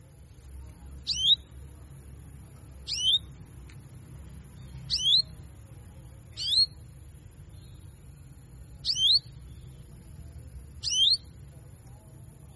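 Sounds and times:
quiet low hum: 0:00.0 - 0:12.5
female Belgian canary giving cuit cuit calls: 0:00.9 - 0:01.7, 0:02.7 - 0:03.4, 0:04.4 - 0:05.6, 0:06.2 - 0:08.1, 0:08.7 - 0:11.4.

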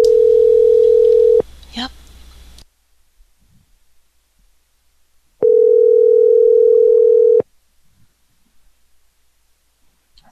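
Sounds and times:
telephone dial tone while placing a call back: 0:00.0 - 0:01.4, 0:05.4 - 0:07.4.

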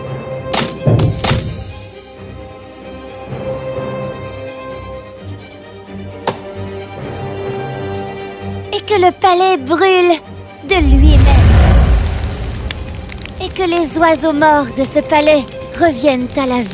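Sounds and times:
wooden items being chopped into small pieces in a palace: 0:00.5 - 0:01.6, 0:06.2 - 0:06.6
speech: 0:09.0 - 0:11.9, 0:13.4 - 0:16.7.

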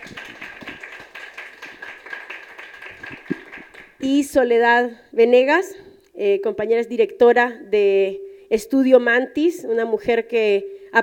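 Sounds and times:
audience applause at a feminist debate on internet governance: 0:00.0 - 0:04.0
speech: 0:04.0 - 0:11.0.

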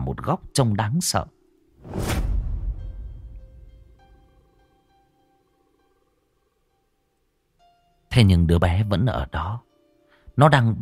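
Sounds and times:
speech: 0:00.1 - 0:02.2, 0:08.2 - 0:09.7, 0:10.4 - 0:10.7
sharp whoosh of a flashlight swung hard backwards: 0:01.8 - 0:04.4
low rumble with faint lingering tones: 0:01.8 - 0:04.6.

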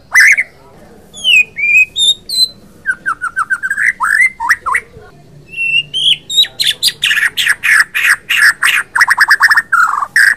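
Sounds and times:
captive white-rumped shama singing: 0:00.0 - 0:10.3.

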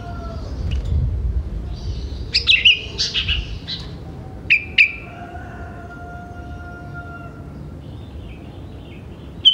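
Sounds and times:
sooty-headed bulbul singing: 0:01.6 - 0:05.1, 0:07.5 - 0:09.5.

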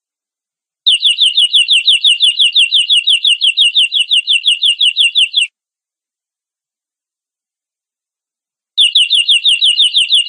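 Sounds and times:
canary song phrase: 0:00.9 - 0:05.5, 0:08.8 - 0:10.2.

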